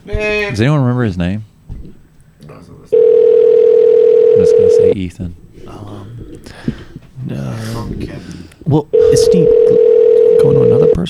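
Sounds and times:
murmured voices: 0:00.0 - 0:11.0
speech: 0:00.1 - 0:01.5, 0:04.4 - 0:11.0
electronic telephone ringback tone during a call transfer: 0:02.9 - 0:05.0, 0:08.9 - 0:11.0.

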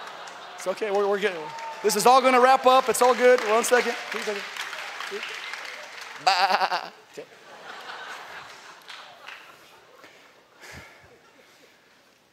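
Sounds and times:
laughter: 0:00.0 - 0:01.2, 0:06.2 - 0:11.9
speech: 0:00.6 - 0:05.4, 0:06.2 - 0:07.4
sheep bleating: 0:06.2 - 0:07.0.

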